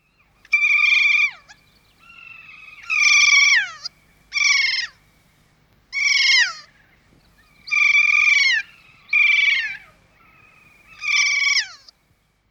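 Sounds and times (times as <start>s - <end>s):
kea parrot shrill falling cries: 2.2s - 5.0s, 5.9s - 6.8s, 7.7s - 9.9s, 11.0s - 11.9s.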